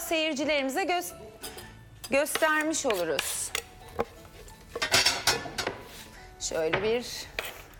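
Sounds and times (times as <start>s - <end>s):
speech: 0.1s - 1.5s, 2.1s - 4.1s, 6.4s - 7.3s
serving plate set down and handled with cutlery: 1.4s - 5.9s.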